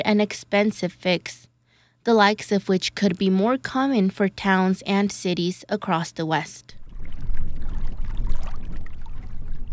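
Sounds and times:
speech: 0.1 - 6.8
low rumbling wind on a cool windy day: 6.7 - 9.7
wind-blown ripples and small waves lapping against the shore of a little reservoir: 6.7 - 9.7.

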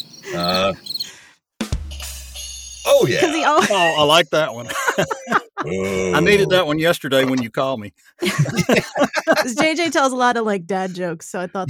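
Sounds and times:
cricket chirping sound effect from a small soundboard box: 0.0 - 1.1
laughter: 0.2 - 0.8, 2.9 - 10.1
speech: 3.0 - 11.6.

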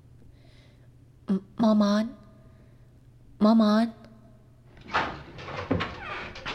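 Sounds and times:
speech: 1.3 - 2.2, 3.4 - 4.0
door swinging open with a soft creak: 4.7 - 6.5.

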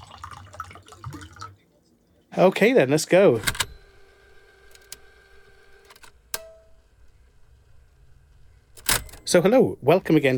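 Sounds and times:
water poured into a glass: 0.0 - 1.6
speech: 2.4 - 3.6, 9.3 - 10.3.

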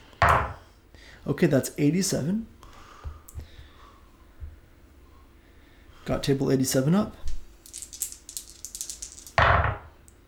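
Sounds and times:
speech: 1.2 - 2.6, 6.1 - 7.2
heavy dice rolling on a table: 7.3 - 9.9.

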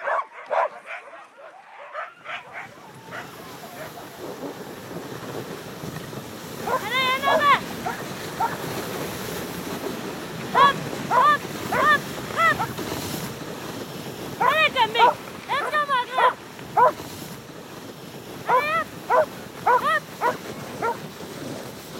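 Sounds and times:
sled dogs howling yelps: 0.0 - 4.0, 10.6 - 12.7, 18.5 - 21.0
pack of sled dogs barking and yipping before departure: 0.0 - 4.2, 6.6 - 8.7, 10.5 - 12.8, 14.4 - 17.0, 18.4 - 21.0.

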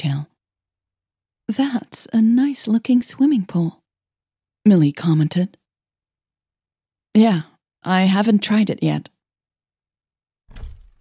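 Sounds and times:
speech: 1.5 - 3.8, 4.7 - 5.6, 7.2 - 9.1
balcony door sliding open with a rumbling slide: 10.5 - 11.0.

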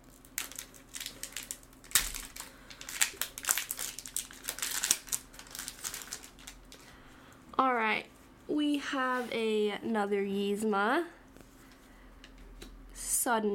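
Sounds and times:
foil trading card pack being opened, crinkling and crackling: 0.0 - 6.9
speech: 8.8 - 11.2, 13.3 - 13.5.

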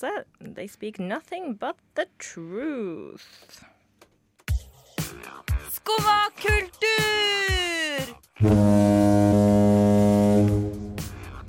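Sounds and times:
speech: 0.0 - 3.7, 5.1 - 9.7
deep foghorn blast in a show jingle: 8.4 - 11.4.

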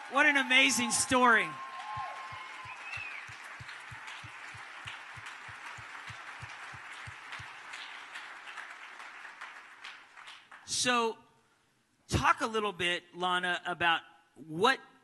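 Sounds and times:
crowd applauding: 0.0 - 10.7
speech: 0.1 - 1.7, 10.8 - 11.2, 12.2 - 14.9.

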